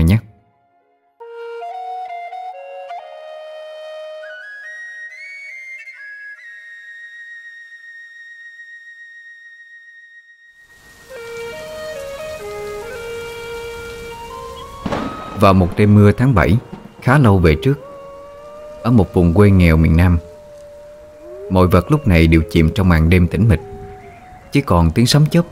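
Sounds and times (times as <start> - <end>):
speech: 0.1 - 0.3, 15.4 - 17.8, 18.8 - 20.3, 21.5 - 23.7, 24.5 - 25.4
ringing melodic tones: 12.8 - 23.3.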